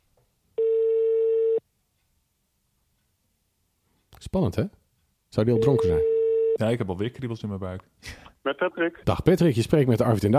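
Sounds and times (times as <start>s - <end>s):
telephone ringback tone of an outgoing call: 0.6s - 1.6s, 5.6s - 6.6s
speech: 4.2s - 10.3s.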